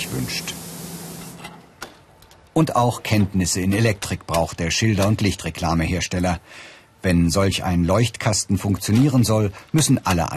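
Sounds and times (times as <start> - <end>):
spray gun spraying primer coat onto a sign box: 0.0 - 1.5
speech: 2.6 - 10.3.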